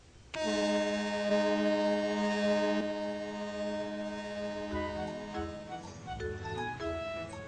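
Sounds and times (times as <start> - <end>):
continuing lower tonal hum: 0.0 - 7.4
ferry boat horn blasting as the ferry approaches the shore: 0.3 - 7.4.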